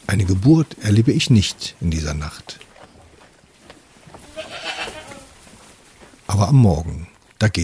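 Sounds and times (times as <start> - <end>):
goats chewing and rustling in a stable: 0.0 - 7.6
speech: 0.1 - 2.7, 6.4 - 7.6
faint goat bleat: 4.2 - 5.3.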